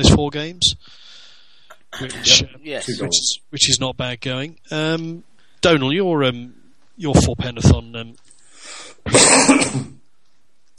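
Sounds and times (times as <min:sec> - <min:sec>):
speech: 0:00.0 - 0:01.2, 0:01.9 - 0:08.3
raspy throat clearing turning into a rough cough: 0:01.7 - 0:03.2, 0:09.1 - 0:10.0.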